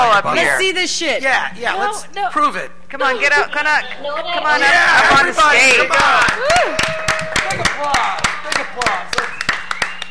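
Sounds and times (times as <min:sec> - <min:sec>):
speech: 0:00.2 - 0:09.2
excited voices: 0:03.0 - 0:09.4
scattered clapping from an audience: 0:05.2 - 0:10.0
whoops: 0:06.3 - 0:07.6.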